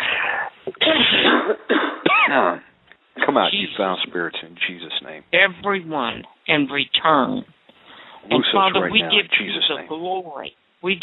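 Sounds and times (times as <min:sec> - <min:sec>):
several people coughing harshly: 0:00.7 - 0:02.6
speech: 0:00.7 - 0:07.6, 0:08.2 - 0:11.0.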